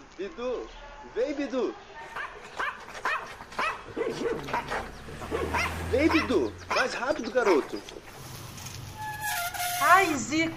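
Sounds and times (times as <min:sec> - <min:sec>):
speech: 0:00.2 - 0:02.6, 0:03.3 - 0:08.2, 0:09.8 - 0:10.5
small dog barking in high-pitched yaps: 0:02.1 - 0:07.7.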